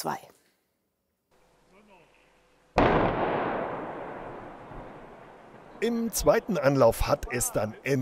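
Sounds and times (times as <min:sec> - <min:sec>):
speech: 0:00.0 - 0:00.3, 0:05.8 - 0:08.0
demolition explosive blast bringing down a bridge viaduct section: 0:02.8 - 0:05.8.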